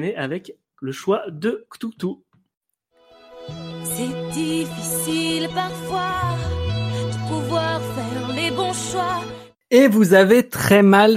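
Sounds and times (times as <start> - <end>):
speech: 0.0 - 2.2, 3.4 - 6.6, 7.3 - 11.1
animated film opening theme music: 2.9 - 9.6.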